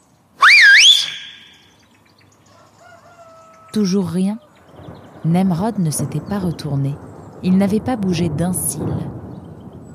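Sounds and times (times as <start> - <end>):
loud shrill whistle with two index fingers in the mouth to a friend: 0.4 - 1.6
speech: 3.7 - 4.4, 5.2 - 9.2.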